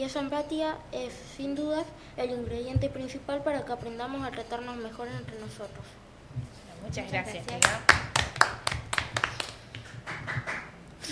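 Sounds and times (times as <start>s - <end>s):
speech: 0.0s - 8.6s
hand clapping applause: 7.4s - 10.8s.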